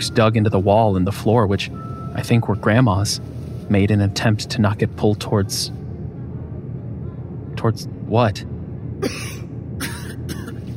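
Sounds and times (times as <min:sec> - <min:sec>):
speech: 0:00.0 - 0:05.8, 0:07.6 - 0:09.4
low steady rumble: 0:00.0 - 0:10.7
rough dry coughs from dust: 0:09.0 - 0:10.6.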